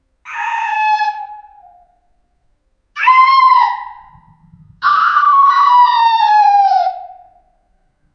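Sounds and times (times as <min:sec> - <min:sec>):
goblin shrieking: 0:00.3 - 0:01.5, 0:03.0 - 0:04.1, 0:04.8 - 0:07.3.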